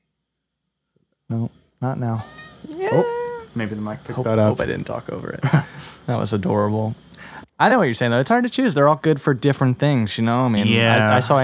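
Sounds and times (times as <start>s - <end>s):
speech: 1.3s - 11.4s
cat meowing: 2.2s - 3.6s
laughter: 5.4s - 6.0s.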